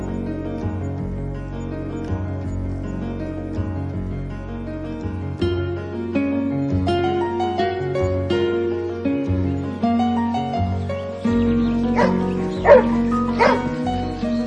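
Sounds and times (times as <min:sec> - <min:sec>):
instrumental music: 0:00.0 - 0:14.4
dog barking in short sharp bursts: 0:11.9 - 0:13.8.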